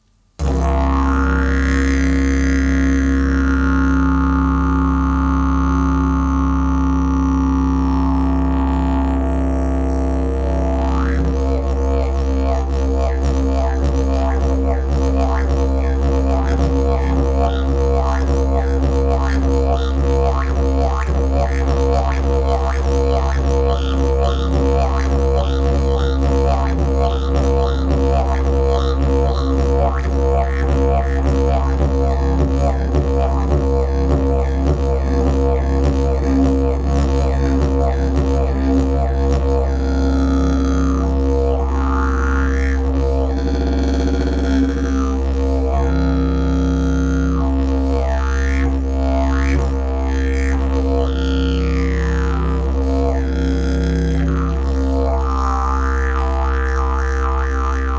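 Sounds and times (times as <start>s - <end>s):
didgeridoo: 0.4s - 57.9s.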